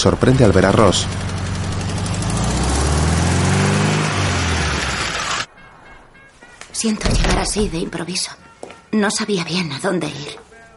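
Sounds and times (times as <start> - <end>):
speech: 0.0 - 1.3, 6.8 - 10.5
car engine starting and driving off: 0.0 - 5.5.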